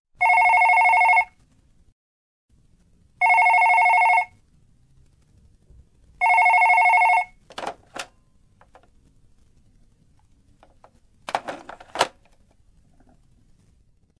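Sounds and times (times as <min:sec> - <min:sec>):
telephone ringtone: 0:00.2 - 0:01.4, 0:03.2 - 0:04.4, 0:06.2 - 0:08.2.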